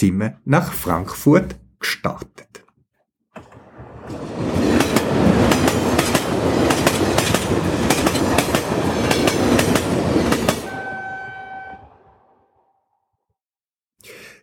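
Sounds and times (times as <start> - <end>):
speech: 0.0 - 2.6
train wheels clacking over track joints: 3.4 - 10.7
Intercity train rumbling along the rails: 3.4 - 12.4.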